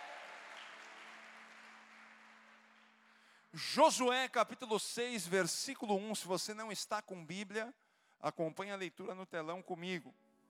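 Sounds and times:
audience applauding during a worship service: 0.0s - 3.2s
speech: 3.6s - 10.2s.

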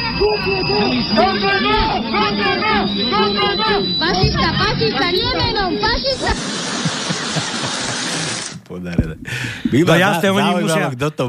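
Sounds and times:
crowd shouting at a rally against fascism: 0.0s - 6.5s
speech: 0.2s - 11.2s
laughter: 6.1s - 8.6s.

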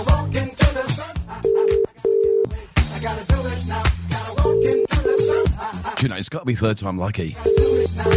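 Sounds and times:
busy rhythmic music: 0.0s - 6.3s, 7.2s - 8.1s
phone ringback tone on an outgoing call: 1.5s - 2.5s, 4.4s - 5.4s, 7.5s - 8.1s
speech: 6.0s - 8.1s.

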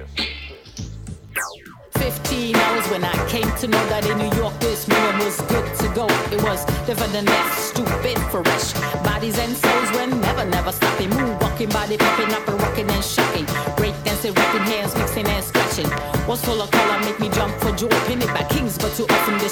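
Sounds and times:
short descending sweep: 1.3s - 3.1s
loud driving beat with punchy drums: 1.9s - 19.5s
rapid male rap vocal: 1.9s - 19.5s
speech: 2.0s - 19.5s.

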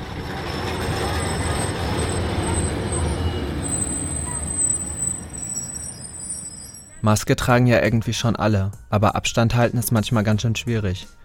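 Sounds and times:
continuous engine and wheel drone: 0.0s - 7.0s
moving tram or bus interior rumbling: 0.0s - 7.1s
passengers chatting indistinctly: 0.0s - 7.2s
faint high whines: 0.7s - 7.0s
speech: 7.0s - 11.2s.

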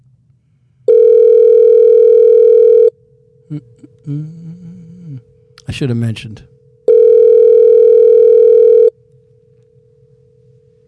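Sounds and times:
faint hum: 0.0s - 10.8s
telephone dial tone: 0.9s - 2.9s, 6.9s - 8.9s
speech: 3.5s - 4.5s, 5.7s - 6.5s.

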